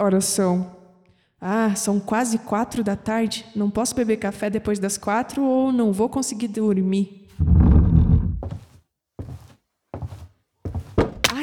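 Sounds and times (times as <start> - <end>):
speech: 0.0 - 0.8, 1.4 - 7.6
broken music box pieces clattering and bumping: 11.0 - 11.4
small music box dropped and hitting the floor: 11.0 - 11.4.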